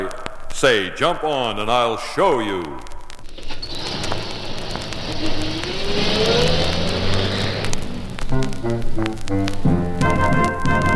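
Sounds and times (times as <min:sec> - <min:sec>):
speech: 0:00.0 - 0:02.9, 0:05.2 - 0:06.6, 0:09.2 - 0:10.4
10-ton truck engine rumbling and revving: 0:03.4 - 0:10.9.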